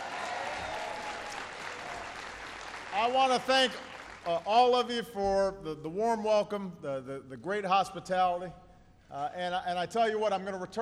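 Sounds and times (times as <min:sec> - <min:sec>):
audience applause at a speech: 0:00.0 - 0:04.5
speech: 0:03.0 - 0:10.7.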